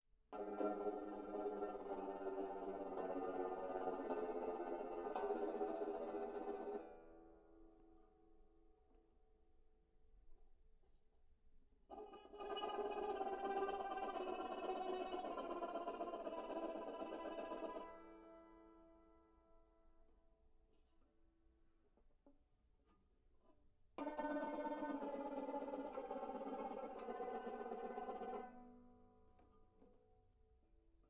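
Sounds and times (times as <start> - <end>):
banjo fingernail tremolo: 0.3 - 7.8, 11.9 - 19.2, 24.0 - 30.2.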